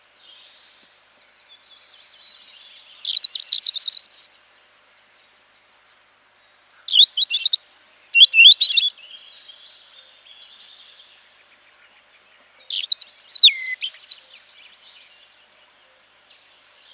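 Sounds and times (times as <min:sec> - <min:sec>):
European robin Erithacus rubecula song: 0:02.5 - 0:04.3, 0:06.5 - 0:09.4, 0:12.4 - 0:14.5.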